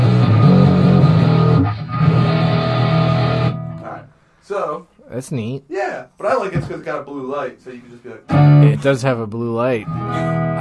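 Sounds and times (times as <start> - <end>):
electric guitar played through built-in distortion effect: 0.0 - 4.0, 8.3 - 9.0, 9.8 - 10.6
speech: 5.2 - 10.6.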